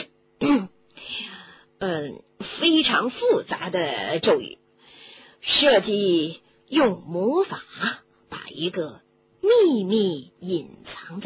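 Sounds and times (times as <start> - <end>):
voice performing a character's throat clearing: 0.4 - 0.8
speech: 1.8 - 2.3, 2.9 - 4.6, 5.4 - 7.9, 8.6 - 9.0, 9.6 - 11.2
softer drawn-out raspy breath: 4.8 - 5.4.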